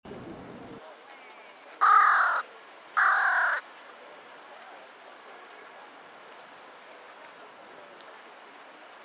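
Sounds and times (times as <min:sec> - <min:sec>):
Carrion Crow Corvus corone cawing: 0:01.8 - 0:02.4, 0:03.0 - 0:03.6.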